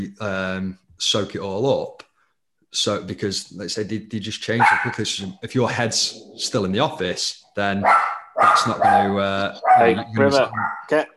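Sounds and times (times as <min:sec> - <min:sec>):
speech: 0:00.0 - 0:02.1, 0:02.7 - 0:11.1
dog barking with sharp harmonic yaps: 0:04.6 - 0:05.1, 0:07.8 - 0:10.9.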